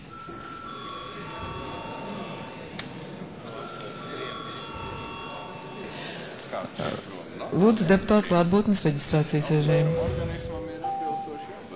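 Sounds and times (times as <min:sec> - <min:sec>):
room noise and indistinct murmuring: 0:00.0 - 0:11.7
parliament session electric bell ringing: 0:00.1 - 0:02.6, 0:03.4 - 0:05.8, 0:09.8 - 0:11.7
speech: 0:06.6 - 0:10.5.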